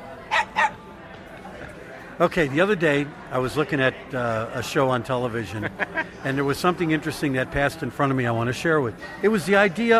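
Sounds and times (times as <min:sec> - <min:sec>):
low steady murmur: 0:00.0 - 0:09.9
dog barking: 0:00.3 - 0:00.8
speech: 0:02.2 - 0:09.9
laughter: 0:05.5 - 0:06.4.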